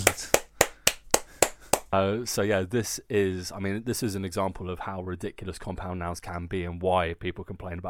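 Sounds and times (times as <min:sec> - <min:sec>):
slow crisp hand claps from one person: 0:00.0 - 0:01.9
speech: 0:01.9 - 0:07.8.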